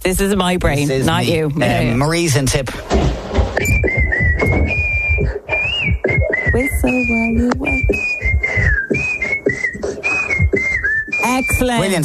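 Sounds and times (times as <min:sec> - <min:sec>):
speech: 0:00.0 - 0:05.5, 0:06.6 - 0:08.1, 0:11.3 - 0:12.0
person whistling a lively melody: 0:03.6 - 0:12.0.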